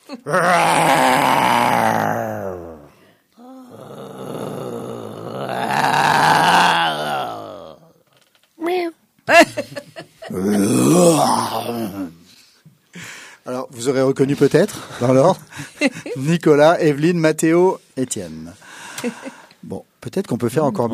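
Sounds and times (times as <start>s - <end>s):
speech: 0.1s - 1.4s, 14.2s - 19.3s, 20.0s - 20.9s
people imitating roars with their voices: 0.2s - 8.0s, 10.3s - 12.2s.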